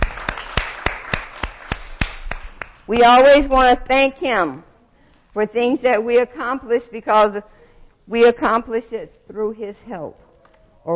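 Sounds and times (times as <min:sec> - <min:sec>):
hand clapping given as praise to God: 0:00.0 - 0:02.9
low hiss: 0:00.0 - 0:10.9
speech: 0:02.9 - 0:04.7, 0:05.3 - 0:07.5, 0:08.1 - 0:10.2.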